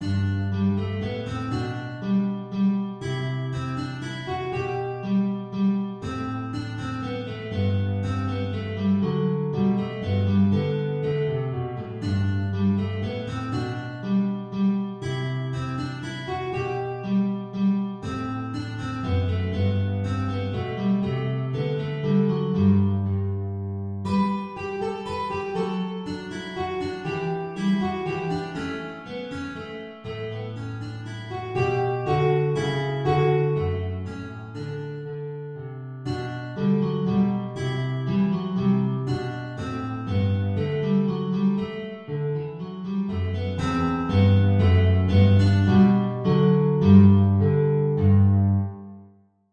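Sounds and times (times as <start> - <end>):
guitar playing a minuet: 0.0 - 48.8.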